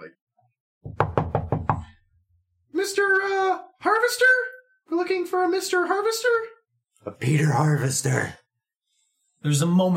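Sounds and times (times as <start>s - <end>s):
knocks on a wall beside a door: 0.8s - 2.0s
speech: 2.8s - 8.4s, 9.4s - 9.9s.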